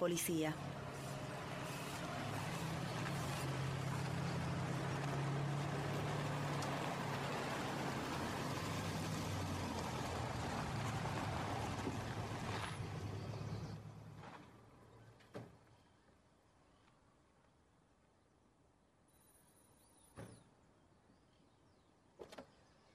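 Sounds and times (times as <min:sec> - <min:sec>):
speech: 0:00.0 - 0:00.8
cars arriving and driving up: 0:00.5 - 0:15.2.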